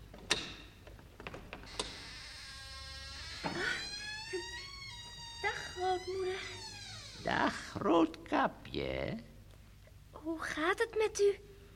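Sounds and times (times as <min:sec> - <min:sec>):
door latch clicks: 0:00.1 - 0:02.0
door hinges creaking as door swings open: 0:00.1 - 0:07.5
speech: 0:06.0 - 0:09.3, 0:10.2 - 0:11.5.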